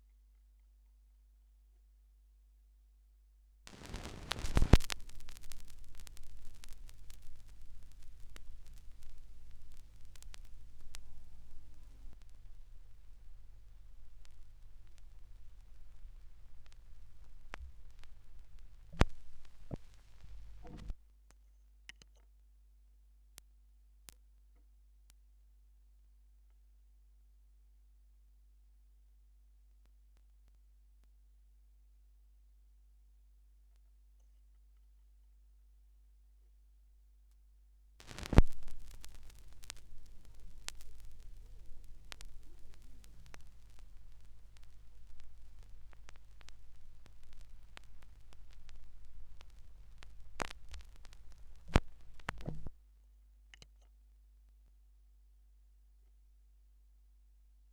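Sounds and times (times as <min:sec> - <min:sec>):
vinyl record noise: 0:03.7 - 0:21.0, 0:38.0 - 0:52.8.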